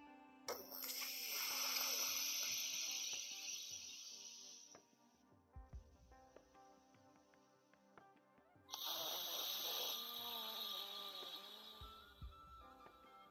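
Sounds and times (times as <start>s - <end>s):
airy nasal breathing through one nostril: 0.5s - 4.8s, 8.7s - 12.5s.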